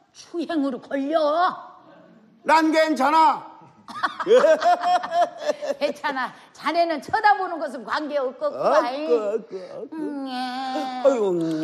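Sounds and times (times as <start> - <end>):
speech: 0.2 - 1.7, 2.4 - 11.6
laughter: 3.9 - 6.2
voice imitating the weak cry of an exhausted newborn baby: 9.0 - 11.6.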